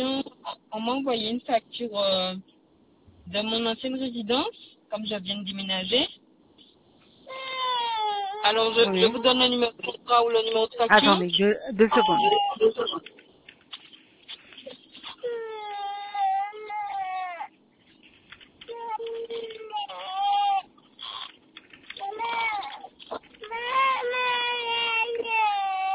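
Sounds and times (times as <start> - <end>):
speech: 0.9 - 2.5, 3.2 - 6.2, 8.4 - 13.2
infant crying and fussing: 7.3 - 9.4, 11.9 - 13.0, 15.1 - 17.5, 18.7 - 21.3, 22.0 - 25.9.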